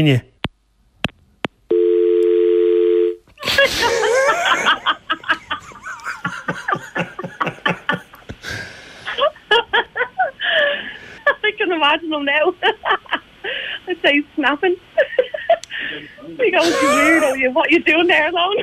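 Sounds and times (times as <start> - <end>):
speech: 0.0 - 0.3, 11.8 - 13.0, 13.9 - 14.8, 16.4 - 18.6
telephone dial tone after hang-up: 1.7 - 3.2
loud rhythmic bursts of laughter: 3.4 - 11.4, 16.6 - 17.4.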